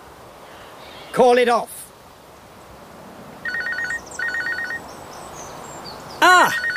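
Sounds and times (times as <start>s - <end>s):
speech: 1.1s - 1.8s
electronic telephone ringing: 3.4s - 4.8s, 6.4s - 6.7s.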